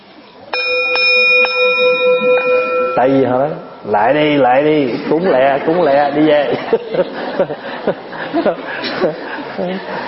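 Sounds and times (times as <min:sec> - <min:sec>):
temple bell struck with a mallet: 0:00.5 - 0:04.9
speech: 0:03.0 - 0:10.0
laughter: 0:04.8 - 0:10.0.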